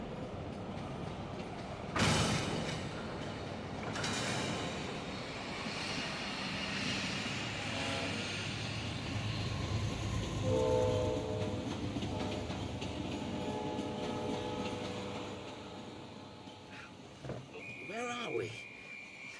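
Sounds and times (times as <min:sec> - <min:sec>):
train rolling along with rhythmic rail clatter: 0:00.0 - 0:19.3.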